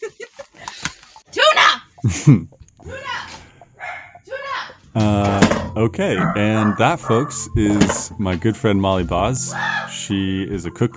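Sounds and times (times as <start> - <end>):
speech: 2.0 - 3.0, 5.0 - 10.9
dog barking: 3.8 - 4.2, 6.2 - 7.4.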